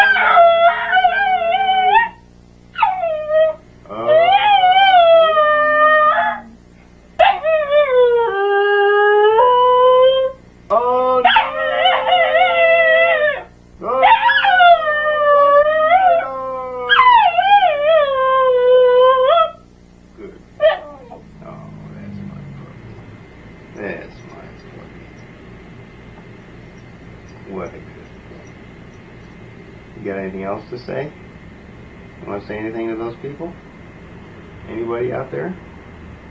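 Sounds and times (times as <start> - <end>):
dog howling, yipping and whining: 0.0 - 6.6, 7.2 - 10.4, 11.0 - 19.6, 20.6 - 22.6
speech: 30.7 - 31.2, 32.5 - 33.6, 34.9 - 35.6.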